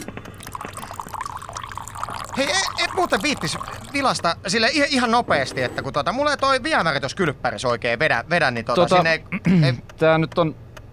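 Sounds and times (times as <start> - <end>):
coffee poured from a pot into a cup: 0.0 - 4.4
speech: 2.4 - 10.6.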